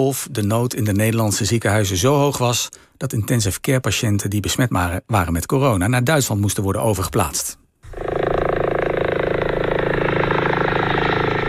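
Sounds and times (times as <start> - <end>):
speech: 0.0 - 8.1
helicopter engine whine: 7.9 - 11.4.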